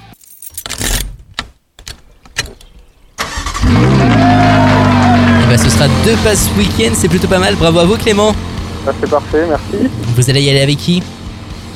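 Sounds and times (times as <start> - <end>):
keys jingling against an ignition: 0.0 - 1.1
car engine turning over and idling: 3.2 - 11.7
speech: 5.8 - 11.2.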